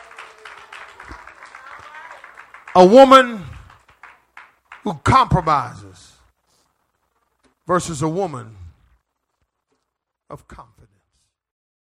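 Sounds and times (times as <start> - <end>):
audience clapping hands in praise to God: 0.0 - 5.8
speech: 2.8 - 3.5, 4.8 - 6.1, 7.7 - 8.6, 10.3 - 11.0.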